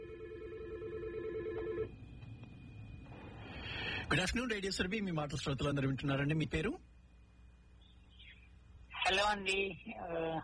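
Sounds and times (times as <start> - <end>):
telephone ringing as a listener calls in to a radio show: 0.0 - 1.9
speech: 4.1 - 6.9, 9.2 - 10.4.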